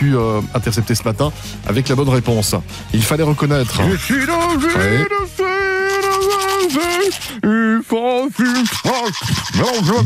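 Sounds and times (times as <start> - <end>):
speech: 0.0 - 10.0
person singing while brushing teeth with a toothbrush: 3.4 - 7.4, 8.3 - 10.0.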